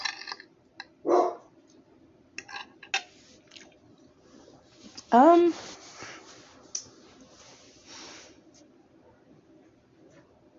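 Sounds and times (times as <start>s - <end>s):
dog barking: 1.0s - 1.5s
speech: 5.1s - 5.7s.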